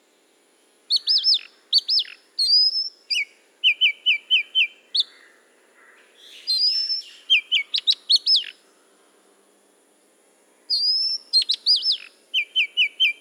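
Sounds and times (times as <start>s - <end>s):
Oriental magpie-robin singing at Udahamulla: 0.9s - 5.2s, 6.2s - 8.6s, 10.7s - 13.2s.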